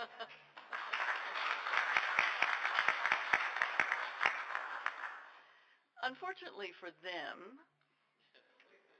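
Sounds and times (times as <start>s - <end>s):
audience round of applause: 0.6s - 5.4s
speech: 6.1s - 7.8s.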